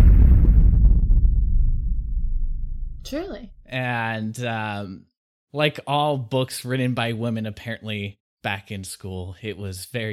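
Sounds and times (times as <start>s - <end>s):
loud explosion: 0.0s - 3.0s
deep sustained rumble of an explosion: 0.0s - 3.6s
speech: 3.1s - 10.1s.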